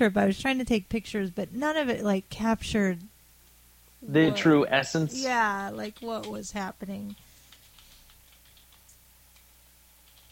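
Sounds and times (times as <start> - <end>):
speech: 0.0 - 3.1, 4.0 - 7.2
faint steady low hum: 0.0 - 10.3
typing on a computer keyboard: 5.8 - 6.4, 7.0 - 10.3.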